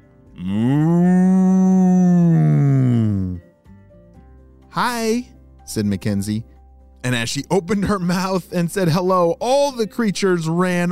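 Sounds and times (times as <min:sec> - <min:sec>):
cow mooing: 0:00.4 - 0:03.4
speech: 0:04.8 - 0:10.8.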